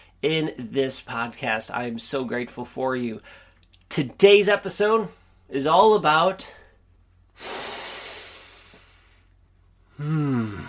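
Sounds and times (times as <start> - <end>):
speech: 0.2 - 6.6, 7.4 - 7.6, 10.0 - 10.6
deep audible breath: 3.2 - 3.6, 7.4 - 10.6.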